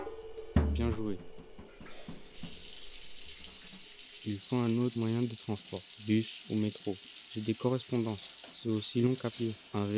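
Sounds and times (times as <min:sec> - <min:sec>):
speech: 0:00.8 - 0:01.4, 0:04.2 - 0:09.9
shower water running: 0:02.2 - 0:09.9.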